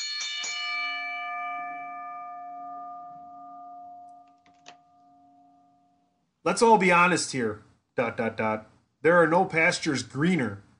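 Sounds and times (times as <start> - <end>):
bell struck and ringing: 0.0 - 6.2
speech: 6.4 - 10.6.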